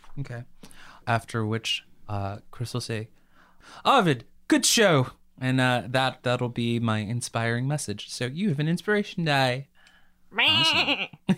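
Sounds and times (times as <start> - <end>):
speech: 0.2 - 9.7, 10.3 - 11.3
goat grunting: 10.4 - 11.1
goat bleating: 10.4 - 11.2.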